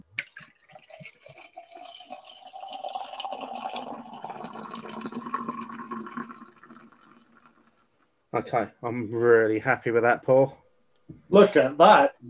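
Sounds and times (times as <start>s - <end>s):
golden beer pouring into a glass: 0.2s - 7.8s
speech: 8.4s - 10.6s, 11.3s - 12.2s.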